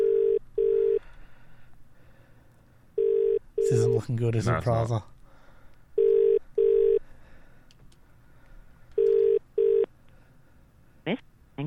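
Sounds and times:
telephone ringing tone heard through the line: 0:00.0 - 0:01.0, 0:03.0 - 0:04.0, 0:06.0 - 0:07.0, 0:09.0 - 0:09.9
speech: 0:03.7 - 0:05.1.

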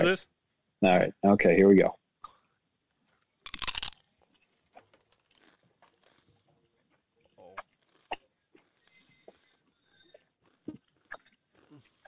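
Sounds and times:
speech: 0:00.0 - 0:02.0
crunchy chewing of a gluten-free snack: 0:03.5 - 0:12.0.

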